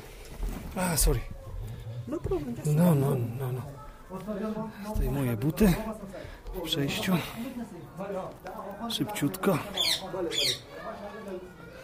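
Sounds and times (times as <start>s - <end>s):
speech: 0.8s - 1.4s, 2.1s - 11.7s
voices murmuring: 0.8s - 11.8s
caged parrot squawking harshly in front of an entrance: 9.7s - 10.7s.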